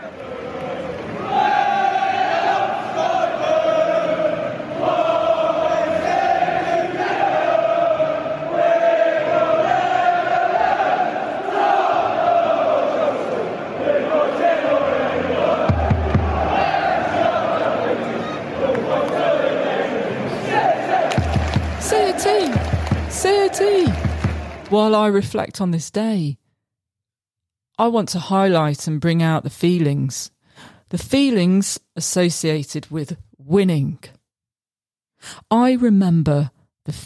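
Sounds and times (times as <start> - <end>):
large football crowd singing and chanting: 0.0 - 24.7
speech: 24.9 - 26.4, 27.8 - 34.1, 35.2 - 37.0.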